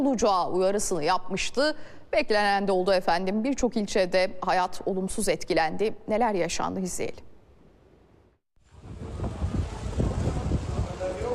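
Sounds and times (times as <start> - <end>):
speech: 0.0 - 7.3
strong storm wind gusting: 8.6 - 11.3.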